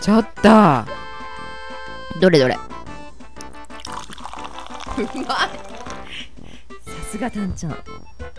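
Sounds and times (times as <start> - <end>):
speech: 0.0 - 1.0, 2.2 - 2.7, 5.0 - 6.3, 7.1 - 8.3
fizzy milky-white soda poured into a glass: 3.7 - 6.2.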